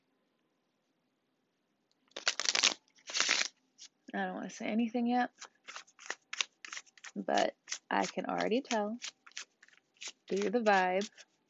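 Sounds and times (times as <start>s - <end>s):
tarot cards being shuffled: 2.1s - 4.0s, 5.3s - 11.4s
speech: 4.1s - 5.6s, 7.2s - 9.2s, 10.3s - 11.3s.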